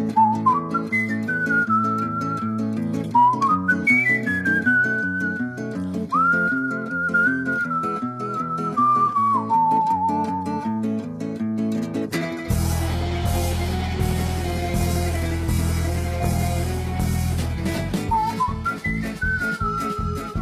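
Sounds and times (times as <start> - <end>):
whistled melody in a song: 0.1 - 10.9, 12.5 - 20.4
full instrumental accompaniment with steady bass and chords: 11.0 - 20.4.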